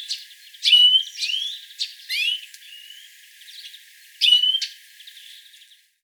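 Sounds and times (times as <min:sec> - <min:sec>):
European greenfinch Chloris chloris chirps and whistled notes: 0:00.0 - 0:05.5.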